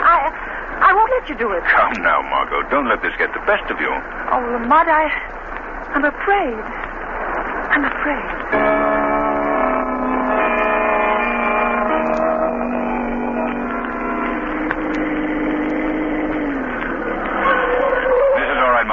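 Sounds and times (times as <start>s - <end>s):
speech: 1.1s - 6.8s, 7.7s - 8.8s
car engine droning while driving: 8.4s - 18.9s.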